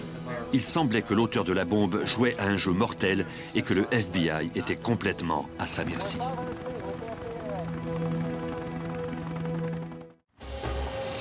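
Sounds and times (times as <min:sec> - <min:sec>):
speech: 0:00.5 - 0:06.7
helicopter flying overhead with rotor hum: 0:02.9 - 0:10.3.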